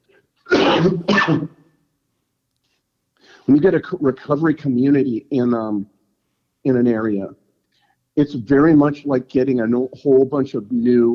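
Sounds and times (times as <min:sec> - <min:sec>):
harsh breathy coughs: 0:00.5 - 0:01.6
speech: 0:00.8 - 0:01.6, 0:03.4 - 0:05.9, 0:06.6 - 0:07.4, 0:08.2 - 0:11.1.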